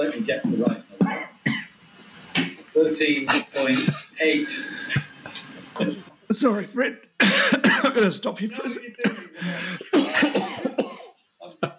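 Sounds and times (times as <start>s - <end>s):
speech: 0.0s - 0.8s, 2.8s - 5.1s, 5.8s - 9.7s
low steady noise: 0.0s - 11.7s
person coughing harshly: 1.0s - 1.7s, 7.2s - 8.0s, 9.0s - 11.2s.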